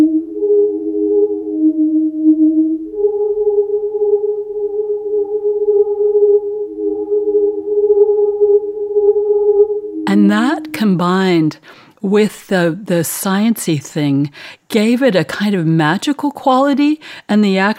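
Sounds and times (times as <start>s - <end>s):
spirit catcher gadget whirling and humming: 0.0s - 11.6s
speech: 10.8s - 17.7s.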